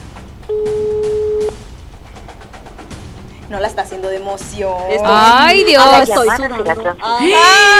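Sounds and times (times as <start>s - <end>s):
ringback tone on an unanswered phone call: 0.5s - 1.6s
speech: 3.5s - 7.7s.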